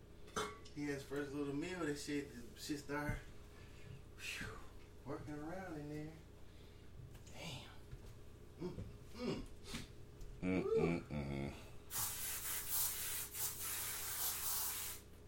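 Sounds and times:
speech: 0.8s - 3.3s, 4.2s - 6.2s, 8.6s - 9.5s, 10.4s - 11.6s
spray can hissing: 11.9s - 15.2s.

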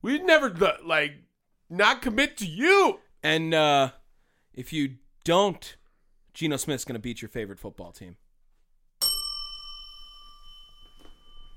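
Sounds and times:
speech: 0.0s - 4.0s, 4.6s - 5.8s, 6.4s - 8.2s
bright bell strike ringing: 9.0s - 11.5s.

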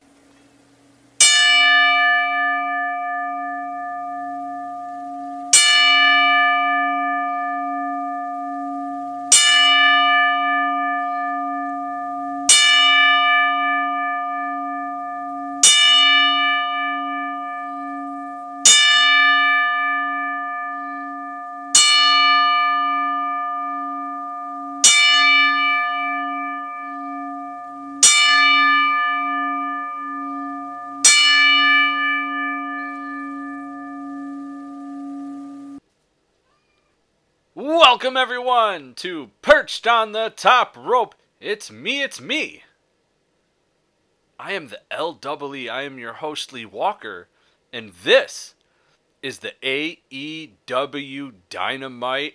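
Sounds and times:
single bell tolling in a ten bell salute: 1.2s - 35.8s
speech: 38.0s - 42.6s, 44.5s - 48.6s, 49.2s - 52.3s.

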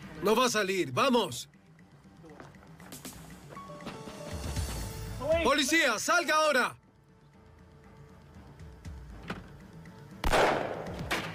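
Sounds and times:
speech: 0.2s - 1.6s, 5.3s - 6.8s
gunshot during a police standoff around a trailer: 10.2s - 11.3s.

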